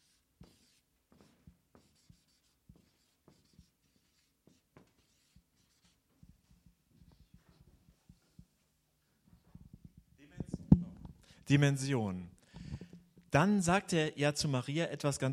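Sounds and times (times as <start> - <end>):
writing on a board: 0.0 - 8.4
speech: 11.5 - 12.3, 13.3 - 15.3.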